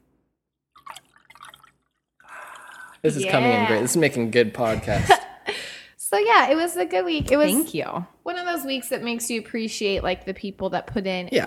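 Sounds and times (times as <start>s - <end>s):
champagne fizzing and pouring into a glass: 0.8s - 4.2s
speech: 3.0s - 5.2s, 6.1s - 11.4s.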